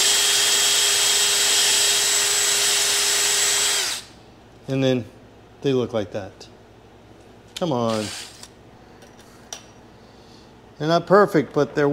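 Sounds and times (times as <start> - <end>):
power drill spinning Scotch-Brite abrasive pad against metal heads: 0.0 - 4.1, 7.9 - 8.5
speech: 4.7 - 6.5, 7.6 - 8.3, 10.8 - 11.9.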